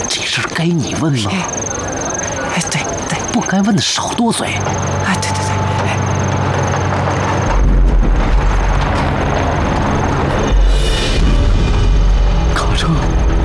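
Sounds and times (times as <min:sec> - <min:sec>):
speech: 0:00.4 - 0:05.5
heavy truck engine rumbling: 0:01.5 - 0:13.4
clattering noise: 0:04.6 - 0:11.7.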